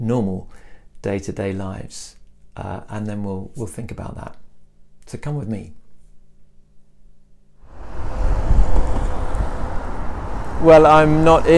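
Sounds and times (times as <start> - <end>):
speech: 0.0 - 4.4, 5.1 - 5.8, 10.6 - 11.5
blustery wind on a river bridge on a sunny morning: 7.6 - 11.5.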